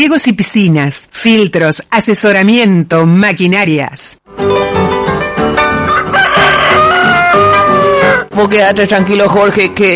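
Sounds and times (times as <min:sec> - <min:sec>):
speech: 0:00.0 - 0:04.9, 0:08.4 - 0:09.9
rooster crowing: 0:05.8 - 0:08.3.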